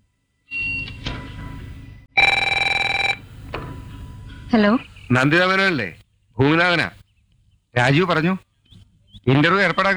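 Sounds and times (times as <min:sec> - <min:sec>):
steady noise: 0:00.0 - 0:09.9
telephone ringing for an outgoing call: 0:00.5 - 0:06.0
speech: 0:04.5 - 0:07.0, 0:07.8 - 0:08.4, 0:09.2 - 0:09.9.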